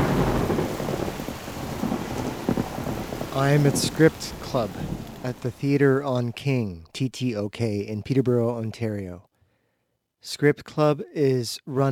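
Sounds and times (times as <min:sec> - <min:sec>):
deep rolling thunder rumbling: 0:00.0 - 0:06.0
steady rain hissing: 0:00.0 - 0:06.2
speech: 0:03.4 - 0:09.3, 0:10.2 - 0:11.8.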